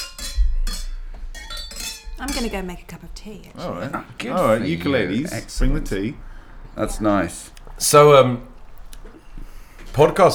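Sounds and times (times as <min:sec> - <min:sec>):
glasses of Chianti Classico clinking in a toast: 0:00.0 - 0:10.3
speech: 0:02.2 - 0:08.5, 0:10.0 - 0:10.3
laughter: 0:02.2 - 0:10.3.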